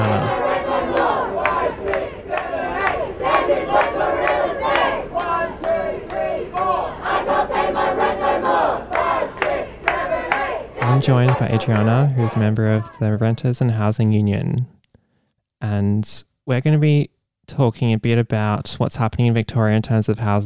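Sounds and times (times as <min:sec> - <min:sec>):
sharp claps or drumbeats: 0:00.0 - 0:06.7, 0:08.9 - 0:12.0
large protest crowd chanting in unison: 0:00.0 - 0:13.0
speech: 0:11.0 - 0:14.8, 0:15.6 - 0:20.4.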